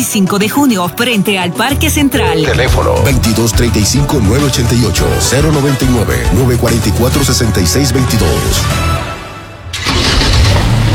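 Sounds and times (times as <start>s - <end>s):
speech: 0.1s - 9.0s
Kia car engine starting and revving: 9.7s - 10.9s.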